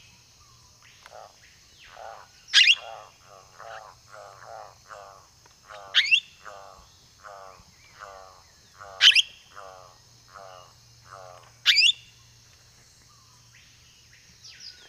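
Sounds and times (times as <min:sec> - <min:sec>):
black-headed parakeet calling: 0:01.9 - 0:11.9.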